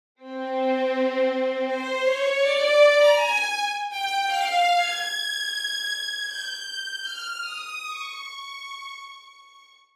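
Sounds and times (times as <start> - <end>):
violins playing: 0.2 - 5.5.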